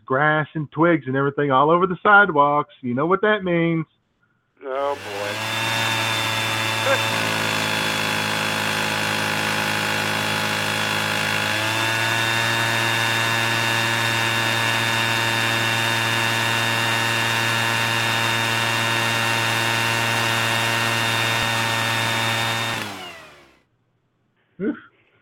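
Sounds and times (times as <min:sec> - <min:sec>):
speech: 0:00.1 - 0:04.0, 0:04.6 - 0:05.6, 0:06.8 - 0:07.3
leaf blower running outside: 0:04.8 - 0:23.6.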